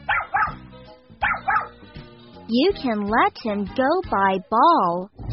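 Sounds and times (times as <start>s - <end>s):
small dog barking with sharp bright yips: 0.0s - 0.6s, 1.2s - 1.8s
speech: 2.5s - 5.2s.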